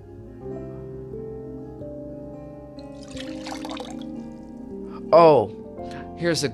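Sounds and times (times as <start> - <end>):
water pouring from a cup: 2.9 - 4.3
speech: 5.1 - 5.6, 6.2 - 6.5.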